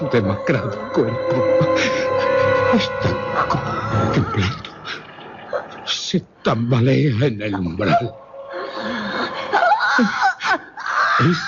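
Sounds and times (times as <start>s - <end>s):
speech: 0.0s - 5.0s, 6.1s - 8.2s, 10.0s - 10.2s, 11.2s - 11.4s
mournful wailing cry: 0.0s - 5.7s, 7.8s - 11.4s.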